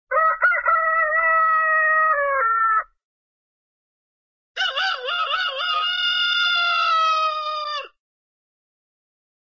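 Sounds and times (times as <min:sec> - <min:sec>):
cartoon rooster morning call: 0:00.1 - 0:02.8, 0:04.6 - 0:07.9.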